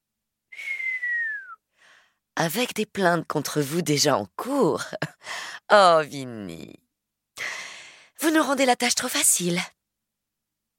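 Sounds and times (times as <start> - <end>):
soft whistling from one person: 0.5 - 1.6
speech: 2.4 - 6.8, 8.4 - 9.8.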